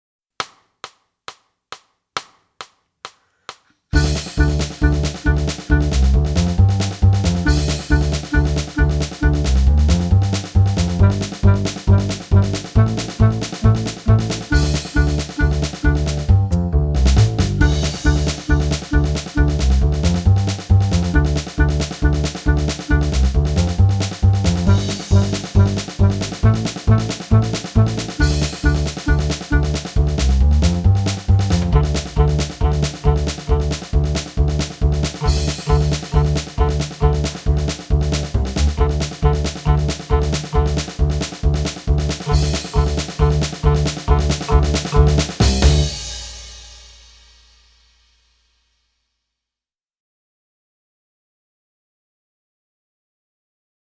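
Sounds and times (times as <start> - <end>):
clarinet: 4.0 - 46.1.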